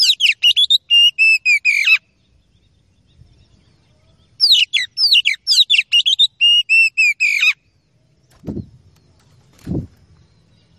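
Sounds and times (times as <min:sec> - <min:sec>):
Oriental magpie-robin giving loud piercing whistled notes: 0:00.0 - 0:02.0, 0:04.1 - 0:07.6.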